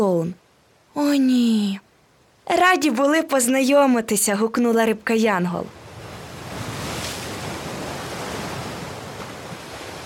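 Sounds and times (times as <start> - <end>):
speech: 0.0 - 0.4, 1.0 - 1.9, 2.5 - 5.8
ocean surf washing along a shore: 5.7 - 10.0.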